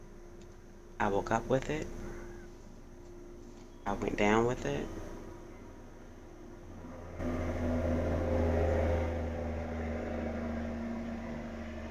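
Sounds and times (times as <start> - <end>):
speech: 1.0 - 2.0, 3.9 - 5.0
truck rumbling past outside: 3.9 - 11.8.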